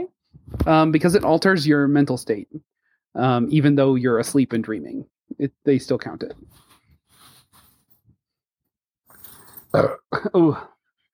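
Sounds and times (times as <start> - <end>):
speech: 0.0 - 2.6, 3.2 - 6.6, 9.7 - 10.7
gurgling burp: 9.7 - 10.4.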